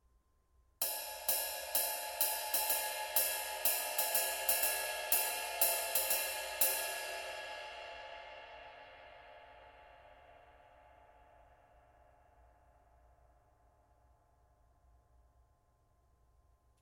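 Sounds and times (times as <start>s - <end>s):
22in light ride cymbal: 0.8s - 10.6s.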